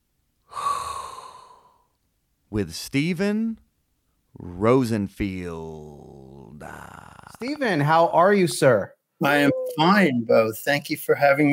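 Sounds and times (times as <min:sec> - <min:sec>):
inhaled hot breath: 0:00.5 - 0:01.9
speech: 0:02.5 - 0:03.6, 0:04.4 - 0:11.5.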